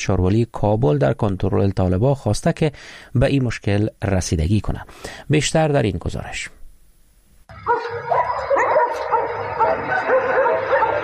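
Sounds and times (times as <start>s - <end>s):
speech: 0.0s - 6.6s
several stray dogs barking and yipping in a street in Kabul Afghanistan: 7.5s - 11.0s.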